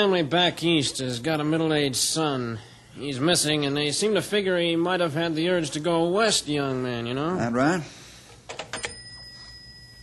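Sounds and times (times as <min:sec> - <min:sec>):
speech: 0:00.0 - 0:08.0
telephone ringing with bright metallic bell strikes: 0:08.7 - 0:10.0.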